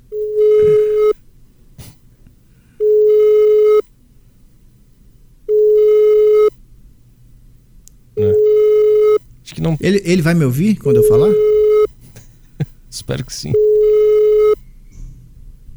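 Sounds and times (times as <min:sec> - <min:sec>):
telephone busy signal while placing a call: 0:00.0 - 0:01.2, 0:02.8 - 0:03.9, 0:05.5 - 0:06.6, 0:08.2 - 0:09.8, 0:10.9 - 0:11.9, 0:13.5 - 0:14.6
speech: 0:09.7 - 0:11.5, 0:13.0 - 0:13.7.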